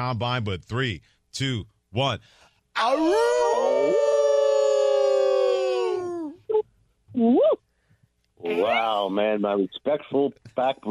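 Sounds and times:
speech: 0.0s - 4.1s, 7.1s - 7.6s, 8.4s - 10.8s
person imitating a wolf howl: 3.0s - 6.4s.

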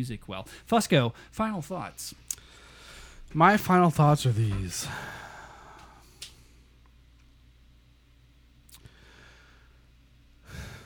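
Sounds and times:
speech: 0.0s - 2.3s, 3.3s - 5.3s
low hum: 0.0s - 10.8s
quiet breaths: 2.3s - 3.4s, 4.7s - 6.8s, 8.8s - 10.8s.

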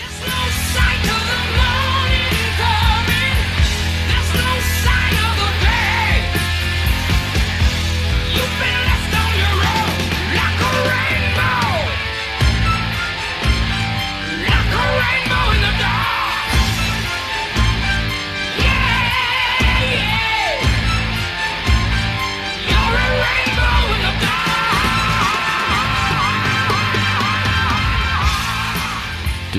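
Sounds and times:
heavy metal singer screaming and wailing: 0.0s - 6.4s, 8.3s - 29.5s
distorted guitars: 0.0s - 29.5s
loud dense heavy metal music: 0.0s - 29.5s.

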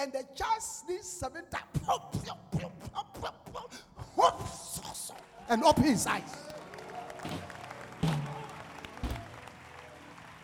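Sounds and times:
speech: 0.0s - 3.3s, 5.5s - 6.4s
congregation clapping hands at a church service: 4.8s - 10.4s.

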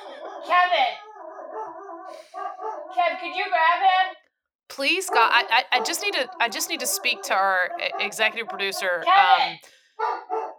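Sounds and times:
dog howling inside a house: 0.0s - 3.0s, 5.0s - 9.4s
speech: 3.2s - 4.2s, 4.8s - 10.2s.

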